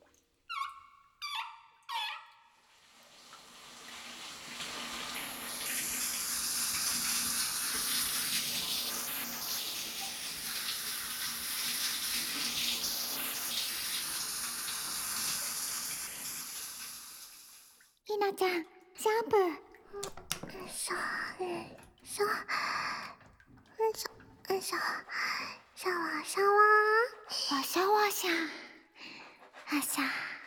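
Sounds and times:
water running from a tap while hair is washed: 2.6 - 18.0, 19.8 - 25.7
speech: 18.2 - 23.0, 23.9 - 28.6, 29.7 - 30.2.

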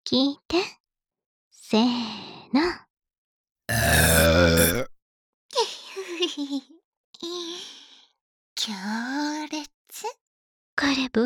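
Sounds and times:
speech: 0.1 - 0.8, 1.7 - 2.8, 6.3 - 7.7, 8.7 - 9.2, 10.8 - 11.2
drawn-out voiced burps: 3.7 - 4.9.

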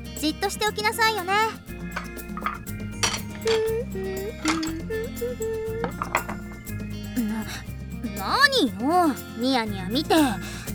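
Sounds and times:
steady melodic music: 0.0 - 10.7
speech: 0.2 - 2.1, 3.4 - 6.5, 7.2 - 10.6
ceramic dishes clinking while being cleared and gathered: 2.0 - 3.8, 4.4 - 4.9, 5.8 - 6.6.

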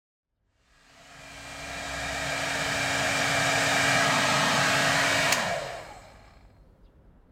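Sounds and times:
ear cleaning sounds: 0.8 - 6.4
massage sounds: 0.8 - 6.4.

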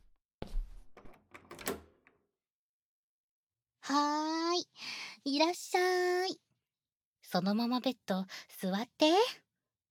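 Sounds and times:
bedroom door opening with latch and handle clicks and a soft creak: 0.5 - 2.2
speech: 5.2 - 6.5, 7.3 - 9.4.

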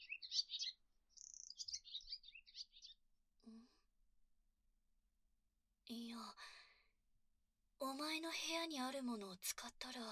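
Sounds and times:
captured bird chirping: 0.0 - 3.0
speech: 5.9 - 6.6, 7.8 - 10.0.

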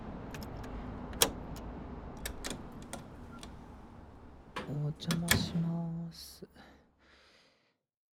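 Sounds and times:
keys jingling: 0.2 - 3.8
house door lock being unlocked with a metallic click: 0.3 - 3.8
speech: 5.0 - 6.6.

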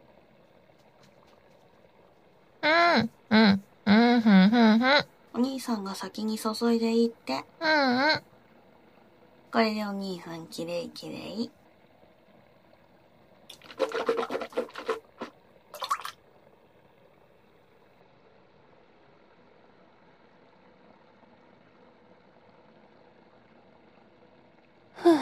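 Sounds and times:
low hum: 0.0 - 25.2
speech: 5.5 - 8.3, 9.5 - 11.6
toothbrush scrubbing teeth: 13.5 - 16.1.

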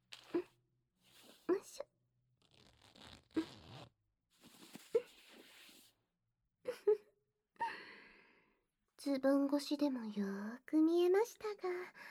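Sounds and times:
brief raspy clothing zipper pull: 0.0 - 0.5, 2.4 - 5.9
clothing fabric rustling during undressing: 2.4 - 5.9
speech: 9.1 - 12.0.

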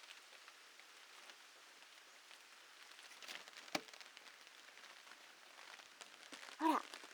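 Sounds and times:
rain pattering on a vinyl umbrella: 0.0 - 7.1
faint vocal sound: 6.6 - 6.9.

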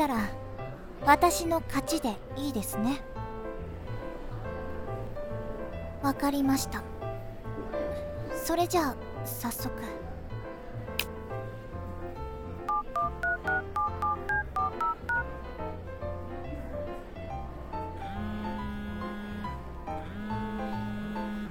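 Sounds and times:
speech: 0.0 - 0.4, 1.0 - 3.1, 6.0 - 6.9, 8.5 - 10.0
soft music: 0.0 - 21.4
warbling phone ring: 12.7 - 15.2
touch-tone telephone dialing beeps: 12.7 - 15.3.

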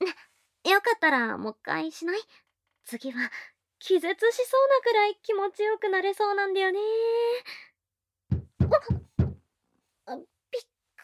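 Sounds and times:
speech: 0.8 - 7.7, 8.7 - 9.1, 10.1 - 10.7
solid knocks on a wooden door: 8.3 - 9.4.

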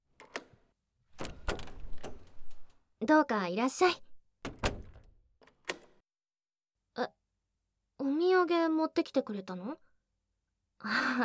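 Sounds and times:
door being opened: 1.2 - 2.8, 3.8 - 6.0
speech: 3.0 - 4.0, 8.7 - 9.9, 10.8 - 11.2.

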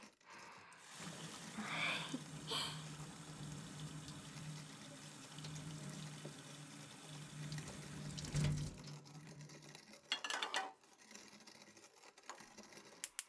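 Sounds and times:
water running from a tap into a kettle: 0.8 - 10.7
metal kitchenware clinking and knocking: 10.1 - 10.8.

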